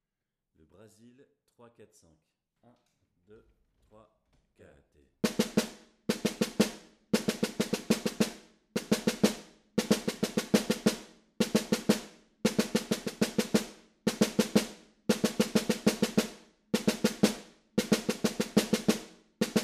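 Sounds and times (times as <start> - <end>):
batucada snare drum: 5.2 - 19.6.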